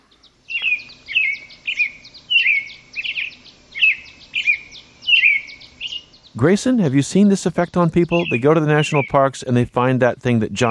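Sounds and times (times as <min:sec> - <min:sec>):
birds singing at sunrise on the South Rim of the Grand Canyon: 0:00.0 - 0:10.6
speech: 0:06.4 - 0:10.6.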